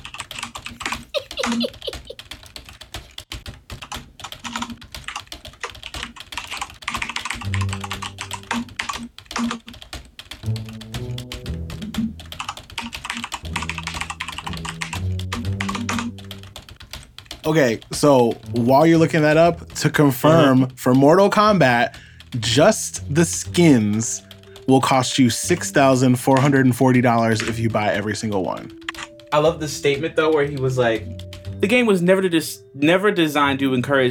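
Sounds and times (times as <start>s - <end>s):
typing on a computer keyboard: 0.0s - 31.9s
laughter: 1.1s - 2.2s
speech: 1.5s - 2.0s, 17.5s - 34.0s
light melodic music track: 6.9s - 34.0s.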